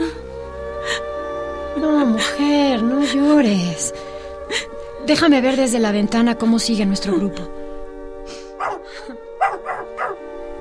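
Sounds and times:
steady low humming drone: 0:00.0 - 0:10.5
speech: 0:01.8 - 0:07.6
dog barking sharply: 0:08.6 - 0:10.2.

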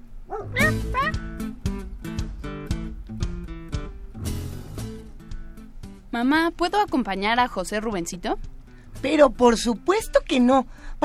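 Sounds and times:
dog barking while being caught with a net: 0:00.3 - 0:01.1
dog yelping: 0:00.3 - 0:01.3
speech: 0:06.1 - 0:11.0.

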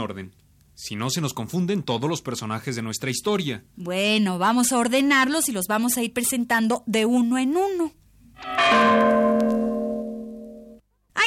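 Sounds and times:
speech: 0:00.0 - 0:09.4
bell ringing: 0:08.4 - 0:10.8.

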